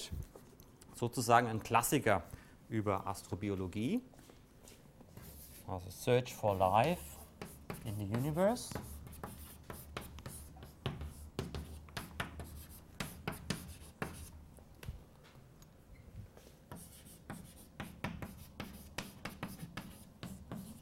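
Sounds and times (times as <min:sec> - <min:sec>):
speech: 0:01.0 - 0:04.2, 0:05.7 - 0:07.1, 0:07.8 - 0:08.9
writing on a board during a lecture: 0:05.1 - 0:05.7, 0:06.3 - 0:14.4, 0:16.4 - 0:20.8.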